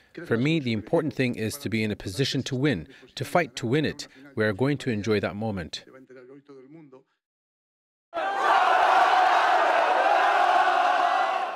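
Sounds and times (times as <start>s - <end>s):
speech: 0.2s - 6.9s
large crowd of Spanish football fans cheering and shouting under the High Line in Manhattan: 8.2s - 11.5s.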